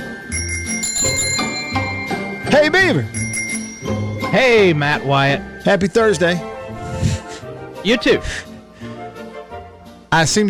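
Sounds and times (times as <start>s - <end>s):
small bell ringing: 0.0s - 6.1s
speech: 2.5s - 3.2s, 4.3s - 6.5s, 7.8s - 8.5s, 10.1s - 10.4s.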